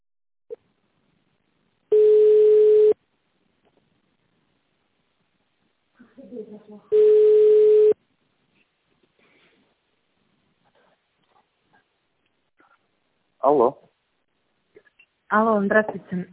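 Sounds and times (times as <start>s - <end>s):
telephone ringback tone as an automated system connects a call: 1.9s - 3.0s, 6.9s - 8.0s
speech: 6.4s - 7.4s, 13.4s - 13.8s, 15.3s - 16.3s.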